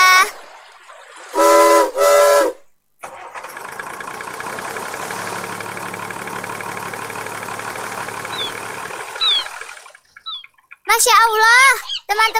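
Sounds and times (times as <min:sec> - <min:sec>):
ship's engine starting up and idling: 0:00.4 - 0:10.6
harmonic blasts of a ship's whistle: 0:01.4 - 0:02.6
brief faint chirp: 0:08.2 - 0:11.0
speech: 0:11.0 - 0:12.3.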